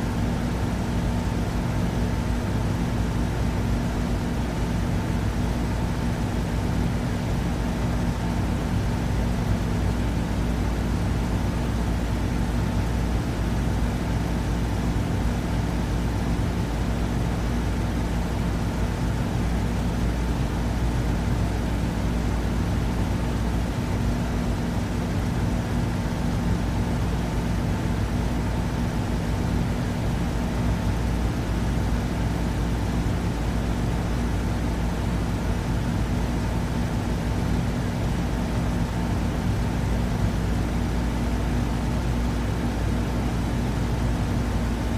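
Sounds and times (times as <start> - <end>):
air conditioner running with a whoosh: 0.0 - 44.9.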